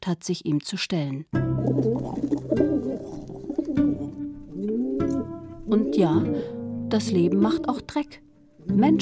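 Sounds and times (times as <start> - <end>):
speech: 0.0 - 3.2, 5.7 - 9.0
low throaty pigeon coos: 1.5 - 7.8.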